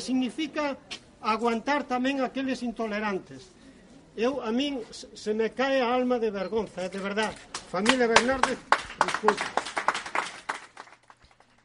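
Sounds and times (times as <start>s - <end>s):
speech: 0.0s - 3.6s, 4.2s - 9.6s
audience applause at end of speech: 7.8s - 11.6s.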